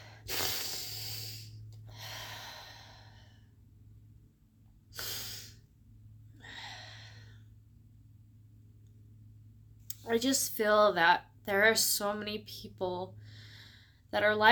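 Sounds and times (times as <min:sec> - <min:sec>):
person taking a deep breath: 0:00.0 - 0:03.6, 0:04.9 - 0:05.7, 0:06.3 - 0:07.6, 0:13.2 - 0:14.1
low steady hum: 0:00.0 - 0:14.4
speech: 0:10.1 - 0:13.4, 0:14.1 - 0:14.4.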